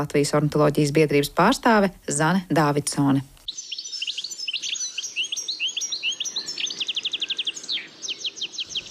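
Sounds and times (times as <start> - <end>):
speech: 0.0 - 3.3
European goldfinch singing: 3.4 - 8.8.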